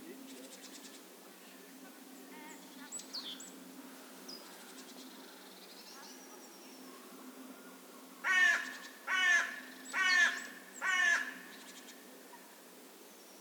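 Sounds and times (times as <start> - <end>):
carrion crow Corvus corone giving harsh hoarse caws: 8.2 - 11.5.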